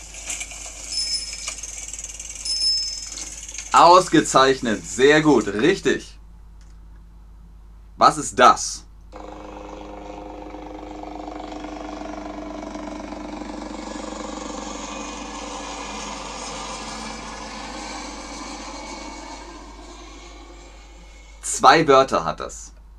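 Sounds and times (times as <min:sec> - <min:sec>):
helicopter engine droning while flying: 0:00.0 - 0:05.6, 0:09.1 - 0:21.6
speech: 0:03.8 - 0:06.2, 0:08.0 - 0:09.2, 0:21.6 - 0:22.8.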